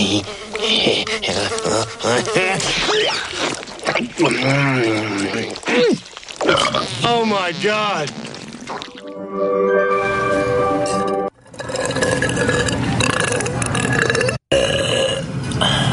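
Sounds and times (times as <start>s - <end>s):
speech: 0.1s - 10.9s
person burping: 4.2s - 6.9s, 11.6s - 15.3s.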